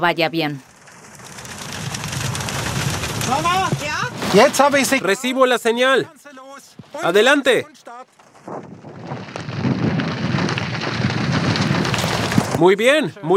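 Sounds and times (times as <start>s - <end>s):
speech: 0.0s - 0.7s, 3.3s - 6.4s, 7.0s - 8.6s, 12.6s - 13.3s
heavy rain from a thunderstorm pouring down: 0.6s - 5.1s, 8.9s - 12.6s.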